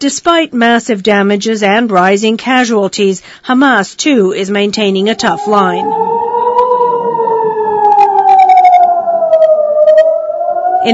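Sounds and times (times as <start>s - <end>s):
speech: 0.0s - 6.2s
wailing rocket attack warning siren: 4.7s - 10.9s.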